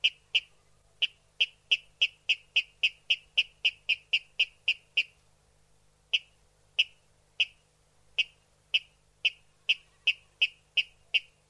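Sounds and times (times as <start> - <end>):
water rail giving sharp clicking kip notes: 0.0 - 5.2, 8.2 - 11.4.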